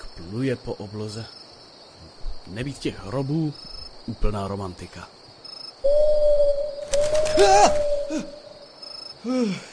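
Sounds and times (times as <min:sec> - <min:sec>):
speech: 0:00.2 - 0:01.4, 0:02.5 - 0:05.2, 0:05.8 - 0:06.3, 0:07.4 - 0:08.4, 0:09.2 - 0:09.7
owl hooting at night: 0:05.8 - 0:08.8.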